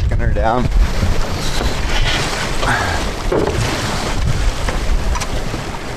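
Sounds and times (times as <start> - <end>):
low rumbling buffeting of wind on a sailboat: 0.0 - 5.9
wind and water rushing around a heeled sailboat under way in swell: 0.0 - 5.9
speech: 0.2 - 1.0, 2.6 - 3.8
sailboat creaking: 0.8 - 5.5.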